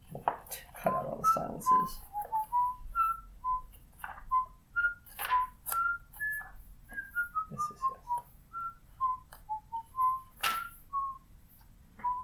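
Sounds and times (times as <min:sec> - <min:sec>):
papery rustling of pages being turned: 0:00.0 - 0:08.4
speech: 0:00.8 - 0:02.1
person whistling a meandering tune of short notes: 0:00.9 - 0:11.3, 0:12.0 - 0:12.2.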